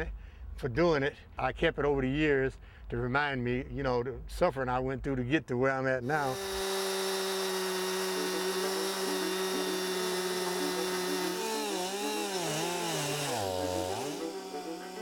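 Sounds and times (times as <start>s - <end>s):
speech: 0.0s - 6.6s
chainsaw cutting wood: 6.1s - 15.0s.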